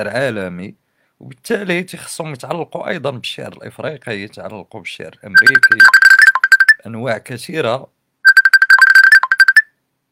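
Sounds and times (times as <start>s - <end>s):
speech: 0.0s - 6.1s, 6.8s - 8.0s
phone ringtone for an incoming call: 5.4s - 6.8s, 8.3s - 9.7s.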